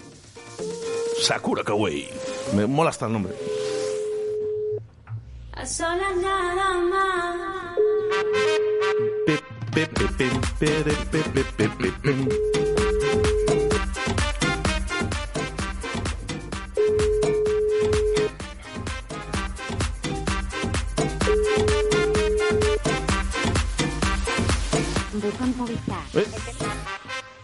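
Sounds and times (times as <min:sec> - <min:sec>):
speech: 0:01.2 - 0:03.6, 0:05.6 - 0:07.7, 0:09.3 - 0:12.7
telephone ringback tone, call unanswered: 0:04.0 - 0:04.8, 0:07.8 - 0:09.4, 0:12.3 - 0:13.8, 0:16.8 - 0:18.3, 0:21.3 - 0:22.8
loud rhythmic music: 0:09.3 - 0:27.4.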